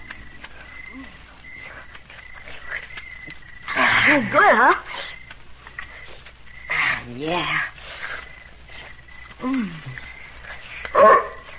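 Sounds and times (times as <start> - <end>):
speech: 4.1 - 5.1, 7.1 - 7.7, 9.4 - 10.0
dog giving a short sharp bark: 10.9 - 11.5.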